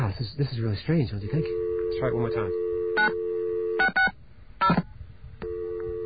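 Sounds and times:
speech: 0:00.2 - 0:03.2, 0:04.7 - 0:04.9
telephone dial tone: 0:01.3 - 0:04.1, 0:05.4 - 0:06.0.

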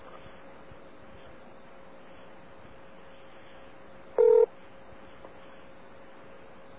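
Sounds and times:
quiet telephone line noise: 0:00.0 - 0:06.7
telephone keypad tone while voice dialing a radio station's line: 0:04.2 - 0:04.5.

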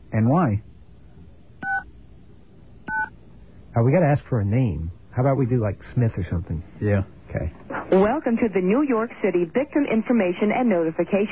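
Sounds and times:
speech: 0:00.2 - 0:00.7, 0:03.8 - 0:11.2
touch-tone telephone keypad dialing a number over a phone line: 0:01.6 - 0:01.8, 0:02.9 - 0:03.1.

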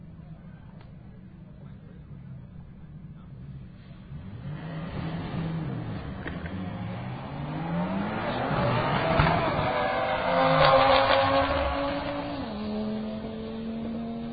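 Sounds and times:
red car and white 2016 Volkswagen Golf R accelerating in a drag race: 0:04.0 - 0:14.3
tire squeal: 0:06.8 - 0:12.6.

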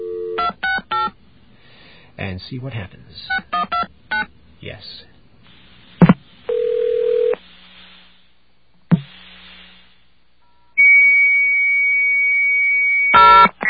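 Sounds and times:
brief tone on a telephone line: 0:00.0 - 0:01.1, 0:06.5 - 0:07.4, 0:10.6 - 0:13.6
payphone dial tone: 0:00.0 - 0:01.1, 0:06.5 - 0:07.4
sharp clicks on a telephone line: 0:00.0 - 0:01.2
speech: 0:02.2 - 0:03.9, 0:04.7 - 0:05.1.

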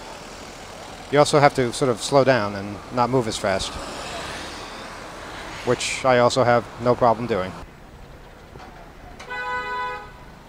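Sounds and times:
street traffic hum: 0:00.0 - 0:10.4
speech: 0:01.1 - 0:04.0, 0:05.6 - 0:07.7
car horn honking in a street: 0:09.2 - 0:10.3.

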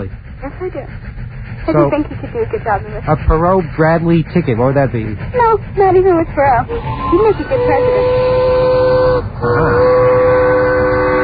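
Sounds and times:
speech: 0:00.0 - 0:08.6, 0:09.4 - 0:10.1
passing train rumbling: 0:00.0 - 0:11.2
passing train horn through a home stereo: 0:06.7 - 0:11.2.

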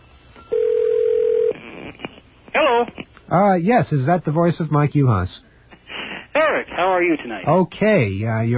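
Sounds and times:
ringback tone from an outgoing phone call: 0:00.5 - 0:01.6
speech: 0:03.3 - 0:05.5, 0:06.8 - 0:08.5.

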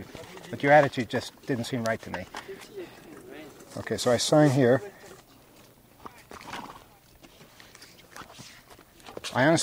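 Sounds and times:
speech: 0:00.0 - 0:02.7, 0:03.7 - 0:05.0, 0:09.3 - 0:09.6
horse hoof clops: 0:00.0 - 0:09.6
horse whinny-like cry: 0:06.3 - 0:06.9
horse snorting: 0:06.3 - 0:07.0.

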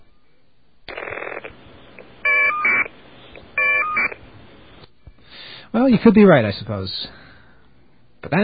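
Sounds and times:
caller ID data tones from two separate phone calls: 0:00.9 - 0:04.8
speech: 0:05.8 - 0:07.2, 0:08.2 - 0:08.4.

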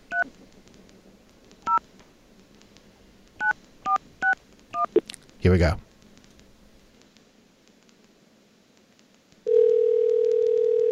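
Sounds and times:
faint hiss: 0:00.0 - 0:10.9
speech: 0:05.4 - 0:05.9
telephone ringing tone on the line: 0:09.5 - 0:10.9.

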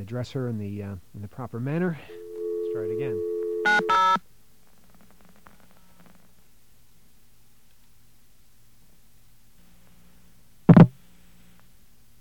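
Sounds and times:
speech: 0:00.0 - 0:02.2, 0:02.8 - 0:04.3
faint low hum: 0:00.0 - 0:12.2
telephone keypad tones dialing the operator: 0:02.2 - 0:04.2.

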